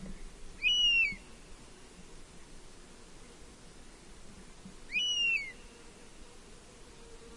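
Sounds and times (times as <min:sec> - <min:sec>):
steady background hiss: 0:00.0 - 0:07.3
European honey buzzard giving plaintive whistled calls: 0:00.6 - 0:01.2, 0:04.9 - 0:05.6.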